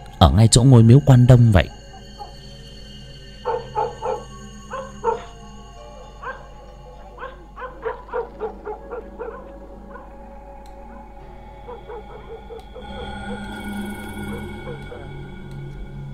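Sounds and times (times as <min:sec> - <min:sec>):
speech: 0:00.2 - 0:01.8
dogs barking in a village at night: 0:01.7 - 0:02.5, 0:03.4 - 0:15.4.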